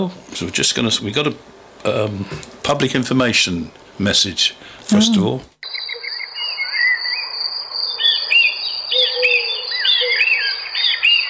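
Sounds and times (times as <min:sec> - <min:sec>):
speech: 0:00.0 - 0:05.5
several birds singing and warbling in a garden in summer: 0:05.6 - 0:11.2.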